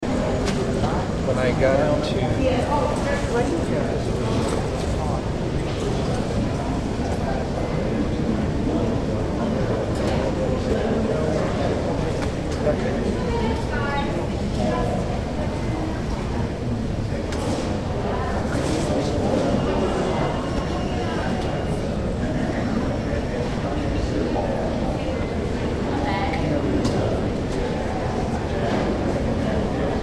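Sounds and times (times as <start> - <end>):
airport terminal background ambience: 0.0 - 30.0.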